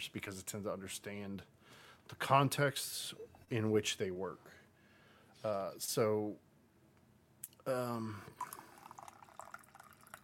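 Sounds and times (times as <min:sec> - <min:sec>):
speech: 0:00.0 - 0:04.6, 0:05.4 - 0:06.5, 0:07.6 - 0:08.6
coffee pouring into a cup: 0:08.3 - 0:10.2.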